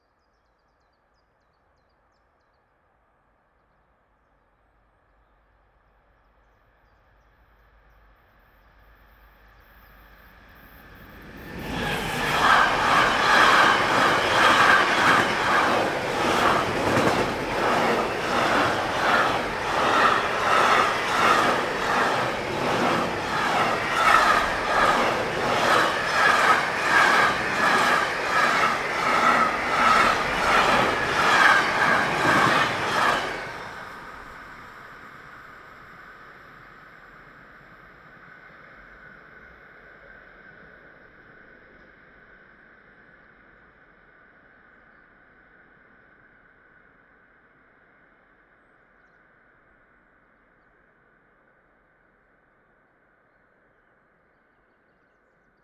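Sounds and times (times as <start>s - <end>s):
fast freight train whooshing: 10.9s - 35.2s.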